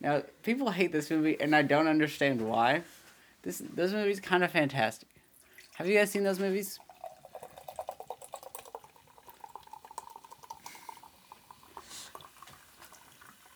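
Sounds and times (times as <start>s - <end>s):
speech: 0.0s - 5.1s, 5.8s - 6.8s
ginger ale pouring into a cup: 5.3s - 13.5s
fizzy ginger ale bubbles popping: 6.8s - 13.5s.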